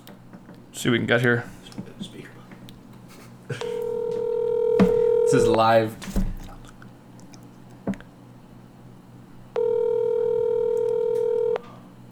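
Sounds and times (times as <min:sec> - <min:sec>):
speech: 0:00.8 - 0:02.1, 0:05.3 - 0:06.2
ringback tone from an outgoing phone call: 0:03.6 - 0:05.6, 0:09.6 - 0:11.8.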